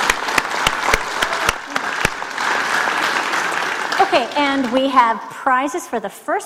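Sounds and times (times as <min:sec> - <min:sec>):
audience applause: 0:00.0 - 0:05.1
speech: 0:04.1 - 0:06.4.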